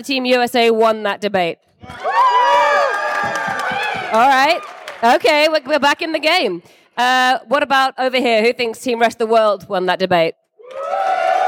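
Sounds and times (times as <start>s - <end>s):
speech: 0.0s - 2.2s, 4.1s - 11.2s
audience yelling, screaming and cheering loudly: 1.8s - 5.0s, 10.6s - 11.4s.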